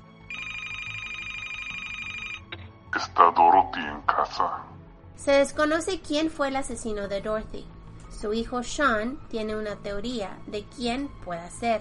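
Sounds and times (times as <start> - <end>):
telephone ringing in an electronic trill: 0.1 - 2.5
speech: 3.0 - 11.7.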